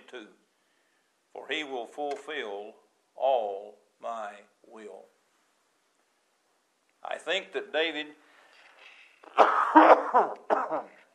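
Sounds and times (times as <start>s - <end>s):
speech: 0.1s - 0.4s, 1.4s - 5.1s, 7.1s - 8.2s, 9.3s - 11.0s
throat clearing rasps: 9.2s - 11.1s
person coughing from something caught in the throat: 9.3s - 11.1s.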